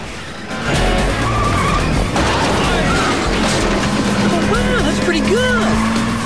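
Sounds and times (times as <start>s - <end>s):
car engines revving as cars speed away: 0.0s - 6.2s
car tyres screeching: 0.0s - 6.2s.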